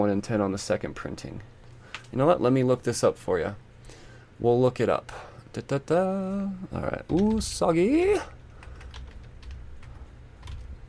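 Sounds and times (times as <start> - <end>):
speech: 0.0 - 3.7, 4.4 - 8.4
typing on a computer keyboard: 8.5 - 10.8.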